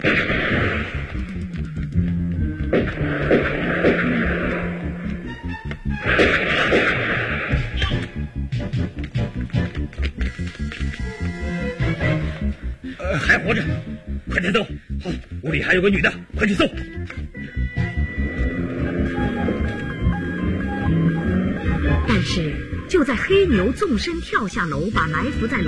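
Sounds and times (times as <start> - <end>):
gunshots sound effect in a dramatized police chase: 0.0 - 1.2, 2.7 - 4.8, 6.0 - 7.8
dense continuous backdrop turning into rapid pulsing bursts: 0.0 - 25.6
speech: 15.8 - 17.8, 22.3 - 25.6.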